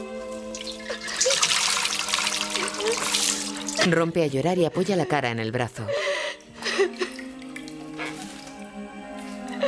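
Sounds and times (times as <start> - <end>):
water pouring from a jug: 0.5 - 3.9, 6.6 - 9.5
speech: 3.8 - 6.1.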